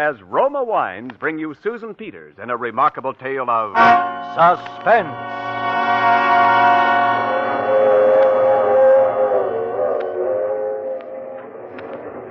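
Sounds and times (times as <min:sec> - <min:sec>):
speech: 0:00.0 - 0:07.0
moving train sustained horn chord: 0:03.8 - 0:11.2
moving train low rumbling: 0:03.8 - 0:12.2.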